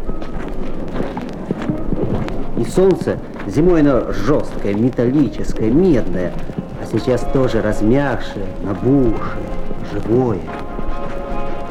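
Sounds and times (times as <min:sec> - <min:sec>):
footsteps through slushy melting snow: 0:00.0 - 0:11.7
speech: 0:02.6 - 0:10.6.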